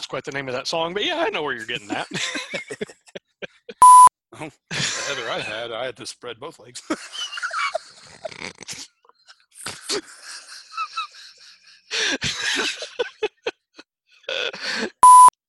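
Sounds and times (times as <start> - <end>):
speech: 0.1 - 2.9, 4.4 - 7.3, 9.9 - 10.2
laughter: 1.1 - 3.8, 4.7 - 5.7, 6.8 - 15.0
phone short loud electronic beep: 3.8 - 4.1, 15.0 - 15.4.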